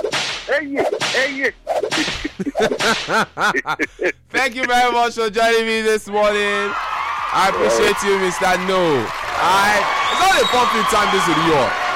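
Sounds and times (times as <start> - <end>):
whip cracks: 0.0 - 3.1
speech: 0.5 - 11.8
laughter: 2.0 - 5.0.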